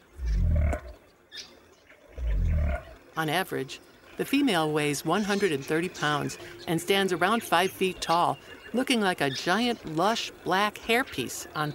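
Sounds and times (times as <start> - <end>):
southern cassowary grunting on the forest floor: 0.2 - 0.9, 2.2 - 3.0
speech: 3.2 - 11.7.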